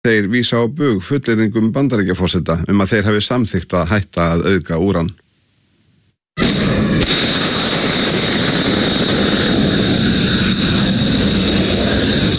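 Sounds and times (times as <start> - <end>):
speech: 0.0 - 5.2
missiles launched from U.S. warships toward Iran: 6.4 - 12.3.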